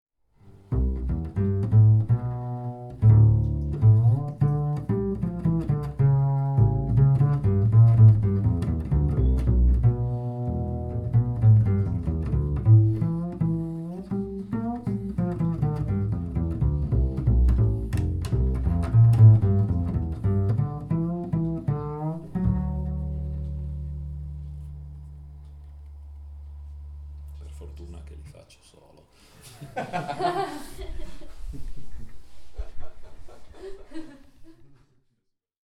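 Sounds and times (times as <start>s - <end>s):
double bass: 0.4s - 28.5s
laughter: 29.4s - 35.0s.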